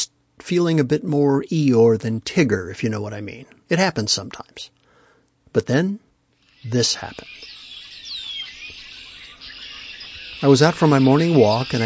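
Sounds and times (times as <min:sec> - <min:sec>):
speech: 0:00.5 - 0:04.8, 0:05.5 - 0:06.0, 0:06.6 - 0:07.5, 0:10.4 - 0:11.8
clear descending whistle of a red-winged blackbird: 0:06.4 - 0:11.8
red-winged blackbirds calling in a chorus from a bare tree beside a trail: 0:06.4 - 0:11.8.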